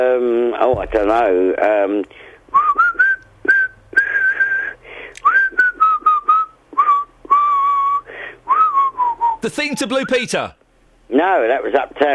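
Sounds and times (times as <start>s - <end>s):
speech: 0.0s - 2.3s, 9.4s - 12.1s
person whistling a catchy pop melody: 2.5s - 9.4s.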